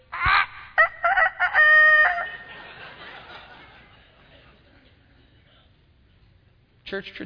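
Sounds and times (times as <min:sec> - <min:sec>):
laughter: 0:00.1 - 0:05.6
rooster crowing: 0:00.2 - 0:02.6
speech: 0:06.9 - 0:07.2.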